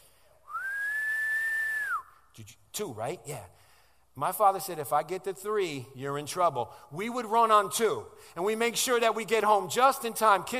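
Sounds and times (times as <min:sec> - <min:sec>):
loud sharp human whistle from a father summoning his kids: 0:00.4 - 0:02.3
speech: 0:02.4 - 0:03.6, 0:04.2 - 0:10.5.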